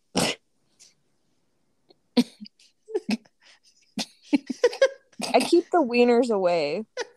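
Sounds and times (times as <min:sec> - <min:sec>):
person choking and coughing: 0:00.1 - 0:00.4, 0:02.2 - 0:03.3, 0:04.0 - 0:05.7
speech: 0:05.4 - 0:06.9.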